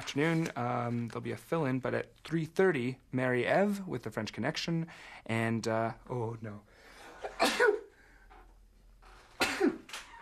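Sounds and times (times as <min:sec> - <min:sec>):
speech: 0:00.0 - 0:07.7
person sneezing: 0:07.2 - 0:07.9, 0:09.4 - 0:09.9.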